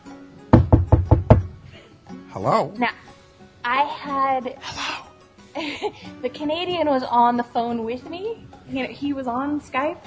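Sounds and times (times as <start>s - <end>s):
firm knocks on an apartment door: 0.5s - 1.6s
speech: 2.3s - 4.9s, 5.6s - 10.0s.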